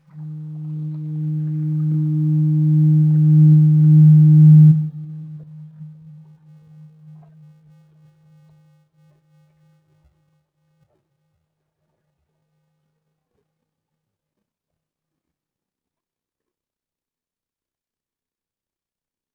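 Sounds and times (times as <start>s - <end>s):
distant foghorn: 0.0s - 7.7s.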